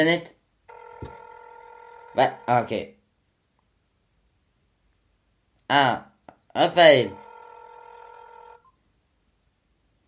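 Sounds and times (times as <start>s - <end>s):
speech: 0.0s - 0.4s, 2.2s - 3.0s, 5.7s - 7.2s
telephone ringing for an incoming call: 0.7s - 2.9s, 6.8s - 8.8s.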